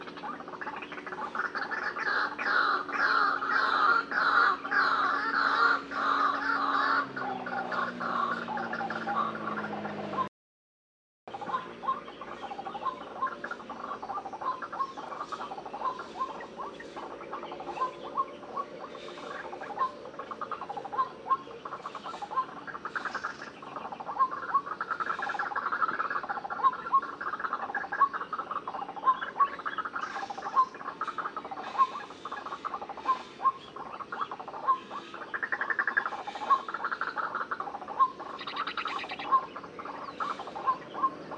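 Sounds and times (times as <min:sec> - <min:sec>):
white-breasted waterhen Amaurornis phoenicurus: 0:00.0 - 0:10.3, 0:11.3 - 0:41.3.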